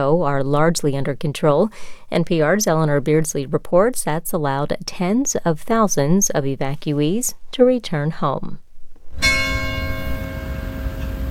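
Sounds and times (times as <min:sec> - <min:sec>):
speech: 0:00.0 - 0:08.6
church bell ringing in a village: 0:09.2 - 0:11.3.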